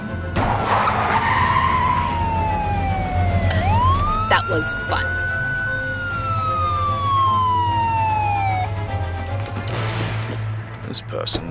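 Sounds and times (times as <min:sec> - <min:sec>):
police siren wailing: 0:00.0 - 0:09.6
low rumble of traffic or an engine: 0:00.0 - 0:11.4
speech: 0:04.5 - 0:05.1, 0:11.1 - 0:11.4.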